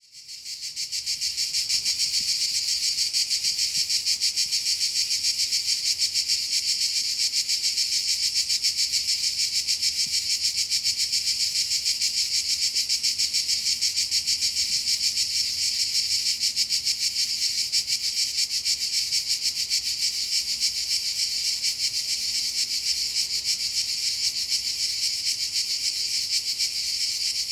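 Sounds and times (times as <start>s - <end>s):
cicadas in Castelvecchio di Rocca Liguria Italy: 0.0s - 27.4s.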